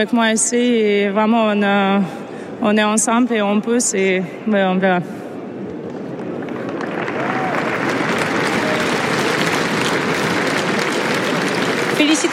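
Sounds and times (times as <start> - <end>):
speech: 0.0 - 5.2
large stadium crowd applauding at a tennis tournament: 5.9 - 12.3.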